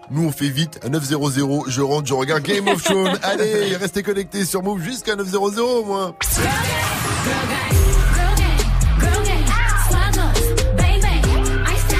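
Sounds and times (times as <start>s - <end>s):
speech: 0.1s - 7.7s
laughter: 2.3s - 4.1s
R&B song playing loudly: 2.5s - 4.0s, 6.2s - 11.9s.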